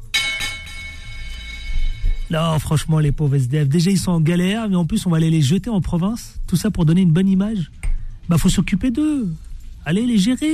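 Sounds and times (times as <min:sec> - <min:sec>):
small bell struck sharply: 0:00.0 - 0:02.7
low noise: 0:00.0 - 0:10.5
speech: 0:02.3 - 0:10.5.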